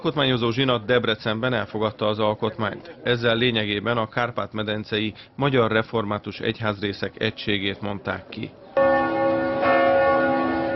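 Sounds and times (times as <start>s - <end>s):
speech: 0.0s - 9.1s
church bell ringing at the great Reformed church: 8.8s - 10.7s.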